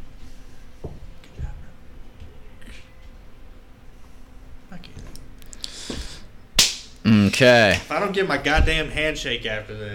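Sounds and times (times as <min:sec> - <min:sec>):
hand slap like a high five: 0:06.6 - 0:06.9
speech: 0:07.1 - 0:09.9.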